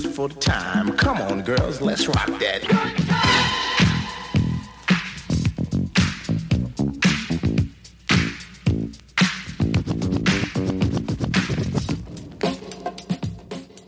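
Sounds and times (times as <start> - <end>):
speech: 0.0 - 3.6
early-eighties hip-hop turntable mix with punchy beats: 0.0 - 13.8.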